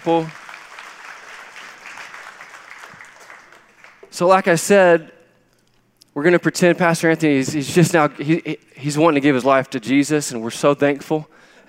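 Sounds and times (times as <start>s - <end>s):
speech: 0.0s - 0.4s, 4.2s - 5.2s, 6.2s - 11.5s
crowd applauding: 0.0s - 4.4s.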